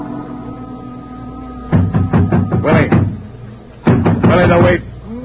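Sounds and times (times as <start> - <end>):
knocking on the wooden door of a waterfront shanty: 1.8 - 3.2, 3.8 - 4.8.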